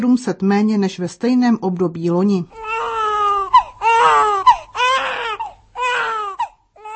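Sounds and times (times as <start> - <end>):
speech: 0.0 - 2.7
newborn baby crying: 2.5 - 6.9.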